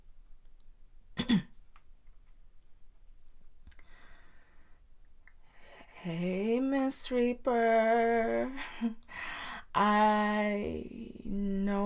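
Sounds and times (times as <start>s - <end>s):
person clearing throat: 1.2s - 1.6s
speech: 6.0s - 11.8s.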